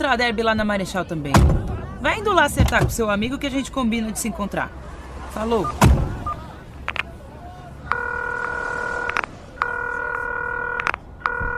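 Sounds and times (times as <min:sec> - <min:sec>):
speech: 0:00.1 - 0:06.1
faint clicks on a phone line: 0:06.8 - 0:07.1, 0:10.8 - 0:11.5
ringback tone of an unanswered phone call: 0:07.9 - 0:11.5.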